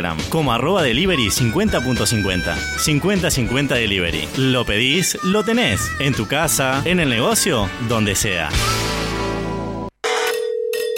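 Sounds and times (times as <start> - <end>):
speech: 0.0 - 9.0
telephone ringing with an electronic trill: 10.0 - 10.9.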